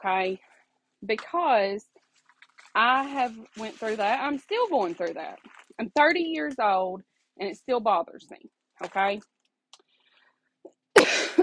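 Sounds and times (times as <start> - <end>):
speech: 0.0 - 2.0, 2.8 - 9.3
person coughing harshly: 11.0 - 11.4.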